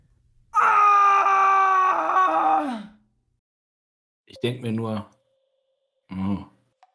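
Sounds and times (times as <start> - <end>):
man's long bloodcurdling scream echoing in a cave system: 0.6 - 3.0
speech: 4.4 - 5.2.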